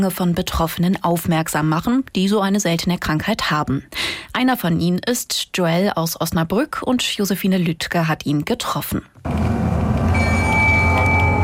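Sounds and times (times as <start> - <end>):
speech: 0.0 - 9.5
city bus driving through Osnabrück: 9.3 - 11.4
thin high whine: 9.3 - 11.4.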